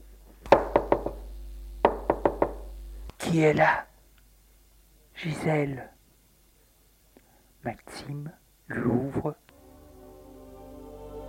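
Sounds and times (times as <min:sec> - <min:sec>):
knocking on a door: 0:00.5 - 0:01.2, 0:01.8 - 0:02.6
speech: 0:03.3 - 0:03.9, 0:05.2 - 0:05.9, 0:07.6 - 0:09.4.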